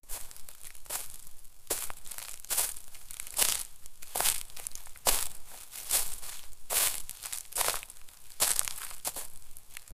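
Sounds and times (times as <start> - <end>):
heavy footsteps crunching through dry leaves in a forest: 0.0 - 9.9.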